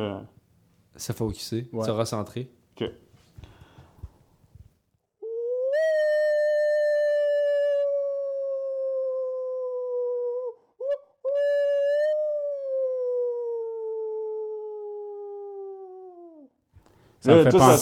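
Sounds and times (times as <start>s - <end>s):
speech: 0.0s - 0.4s, 1.0s - 3.0s, 17.2s - 17.7s
person imitating a werewolf howl: 5.2s - 10.7s, 11.4s - 16.6s.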